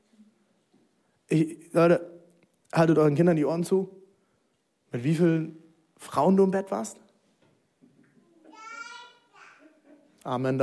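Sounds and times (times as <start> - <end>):
speech: 1.3 - 2.1, 2.7 - 4.0, 4.9 - 7.0, 10.2 - 10.6
small child's short high sing-song vocalization: 8.2 - 9.9.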